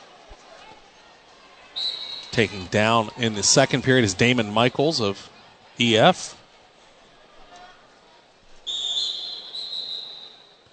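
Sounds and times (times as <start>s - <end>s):
low murmur of a crowd: 0.0s - 10.7s
referee's whistle blast starting a wrestling period: 1.8s - 2.4s, 8.7s - 10.5s
speech: 2.4s - 6.4s.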